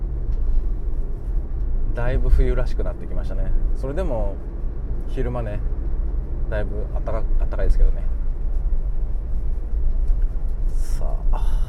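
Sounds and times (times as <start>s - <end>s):
low rumble inside a parked car: 0.0s - 11.6s
speech: 2.0s - 4.5s, 5.1s - 5.8s, 6.5s - 8.1s, 11.0s - 11.6s.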